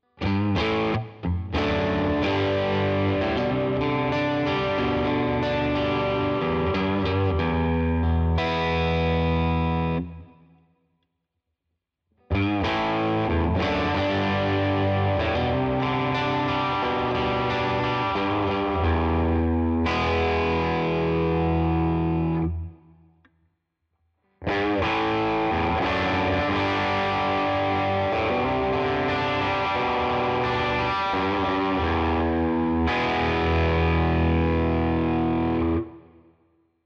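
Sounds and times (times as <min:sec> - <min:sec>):
mid-gain guitar riff: 0:00.0 - 0:10.5, 0:12.3 - 0:22.8, 0:24.4 - 0:36.1.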